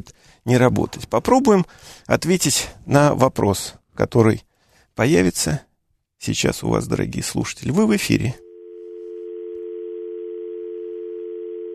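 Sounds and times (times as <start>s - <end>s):
speech: 0.0s - 8.4s
continuous telephone tone after a dropped line: 8.3s - 11.7s.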